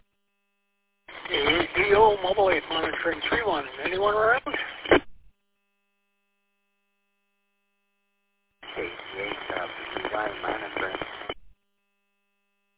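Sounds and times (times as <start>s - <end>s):
digital modem data chirps over a radio: 1.1s - 4.9s, 8.7s - 11.4s
speech: 3.1s - 4.5s.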